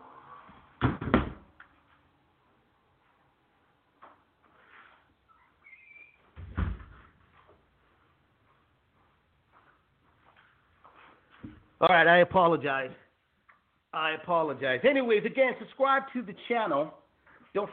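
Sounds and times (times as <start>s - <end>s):
door shutting with a loud bang: 0.8s - 1.5s, 6.4s - 7.0s
speech: 11.8s - 13.0s, 14.0s - 17.7s.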